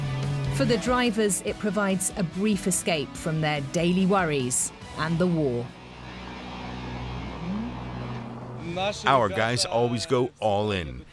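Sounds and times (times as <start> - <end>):
drift car engine revving on the frozen Dnieper River: 0.0 - 9.6
speech: 0.6 - 5.8, 8.8 - 11.1.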